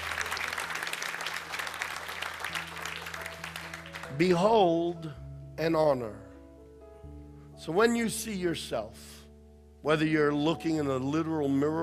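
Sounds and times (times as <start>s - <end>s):
crowd applause: 0.0s - 4.4s
speech: 4.1s - 6.2s, 7.6s - 9.2s, 9.8s - 11.8s.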